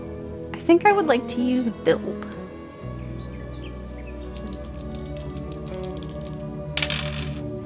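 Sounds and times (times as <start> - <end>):
speech: 0.7 - 2.4
dice clattering and tumbling: 4.3 - 7.5.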